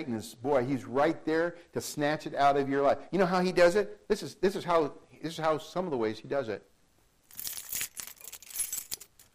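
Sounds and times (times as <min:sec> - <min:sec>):
speech: 0:00.0 - 0:06.7
keys jangling: 0:07.2 - 0:09.3.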